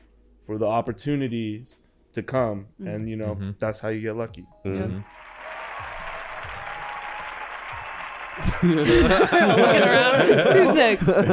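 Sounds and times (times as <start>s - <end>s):
speech: 0.5s - 5.3s, 8.4s - 11.3s
audience applause: 5.0s - 11.3s
laughter: 7.9s - 11.3s.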